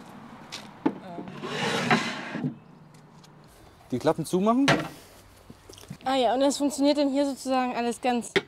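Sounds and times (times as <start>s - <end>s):
wooden crossboard scraping as it slides into place as a drawer: 1.1s - 2.6s
speech: 3.9s - 5.0s, 6.1s - 8.4s.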